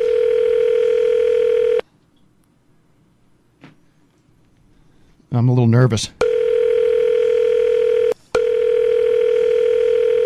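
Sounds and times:
electronic ringback tone of a phone call being placed: 0:00.0 - 0:01.8, 0:06.2 - 0:10.2
speech: 0:05.3 - 0:06.2.

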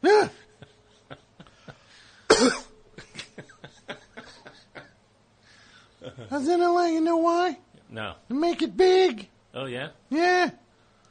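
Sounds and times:
single loud harsh cough: 0:02.2 - 0:03.4
speech: 0:06.4 - 0:10.6.

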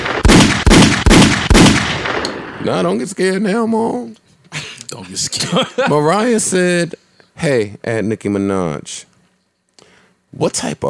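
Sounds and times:
gunshots: 0:00.0 - 0:02.8
speech: 0:02.6 - 0:04.2, 0:04.9 - 0:09.1, 0:10.3 - 0:10.8
laughter: 0:04.6 - 0:06.4.

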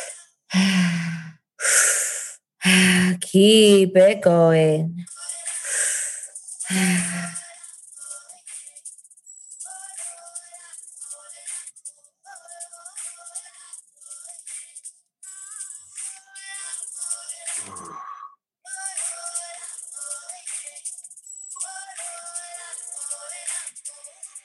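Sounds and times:
deep heavy breathing during a guided breathing exercise: 0:00.0 - 0:03.2, 0:05.6 - 0:07.4
speech: 0:03.3 - 0:05.1, 0:06.7 - 0:07.4.

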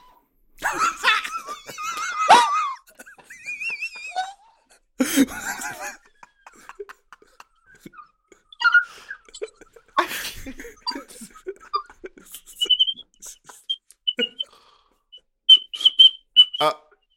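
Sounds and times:
laughter: 0:00.6 - 0:14.5
woman whistling through her teeth in high-pitched bursts: 0:12.6 - 0:17.1.

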